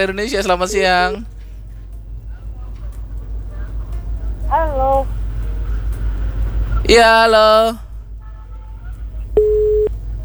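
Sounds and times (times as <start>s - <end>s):
speech: 0.0s - 1.3s, 4.5s - 5.2s, 6.9s - 7.8s
low hum: 0.0s - 10.2s
telephone line busy tone beep after a call is cut off: 9.4s - 9.9s.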